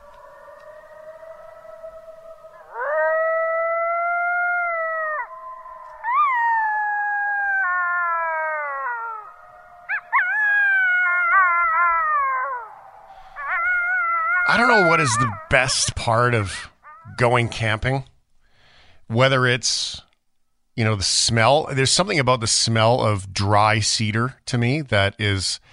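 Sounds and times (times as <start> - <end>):
coyotes howling and yipping: 0.0 - 17.6
speech: 14.8 - 18.1, 19.1 - 20.1, 20.8 - 25.7.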